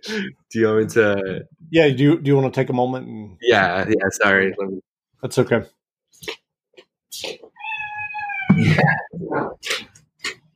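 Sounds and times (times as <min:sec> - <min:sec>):
speech: 0:00.1 - 0:06.4, 0:07.2 - 0:07.5, 0:08.5 - 0:09.9
cat meowing with a drawn-out wavering cry: 0:07.5 - 0:09.1.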